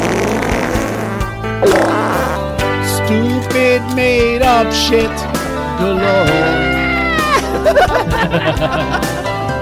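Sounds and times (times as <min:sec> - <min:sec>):
buzzy fart sound effects: 0:00.0 - 0:02.8
speech: 0:03.6 - 0:06.8, 0:07.6 - 0:09.3
laughter: 0:06.0 - 0:09.4.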